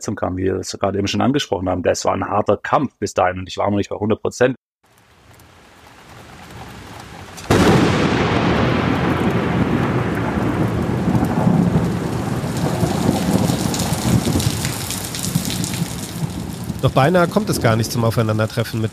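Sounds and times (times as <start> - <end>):
speech: 0.0 - 4.7, 16.8 - 18.9
heavy torrential rain pouring down: 4.8 - 18.9
deep rumbling thunder: 5.4 - 18.9.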